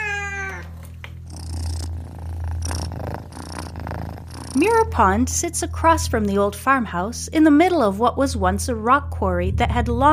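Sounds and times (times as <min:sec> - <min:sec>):
cat meowing: 0:00.0 - 0:00.8
cat purring loudly while rubbing against a person's legs: 0:00.5 - 0:06.4
speech: 0:04.5 - 0:10.1.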